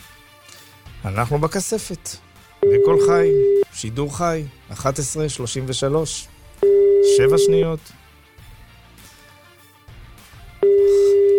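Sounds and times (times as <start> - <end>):
speech: 1.0 - 8.0
electronic ringback tone on an outgoing phone call: 2.6 - 3.7, 6.6 - 7.7, 10.6 - 11.3.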